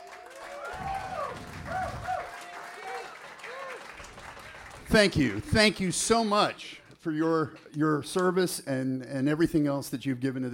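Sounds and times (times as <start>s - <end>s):
people cheering: 0.0s - 5.9s
large audience applause: 0.0s - 6.4s
speech: 4.9s - 10.5s.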